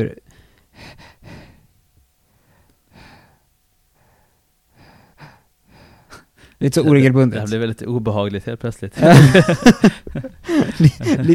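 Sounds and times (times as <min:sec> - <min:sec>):
speech: 0:00.0 - 0:00.2, 0:06.6 - 0:11.3
person imitating irregular labored breathing of a dying patient: 0:00.7 - 0:01.7, 0:02.6 - 0:03.4, 0:04.0 - 0:06.4
laughter: 0:09.0 - 0:11.3.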